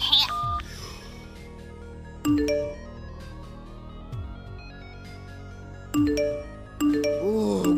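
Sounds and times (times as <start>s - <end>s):
phone melodic electronic ringtone: 2.3s - 3.1s, 6.0s - 7.7s.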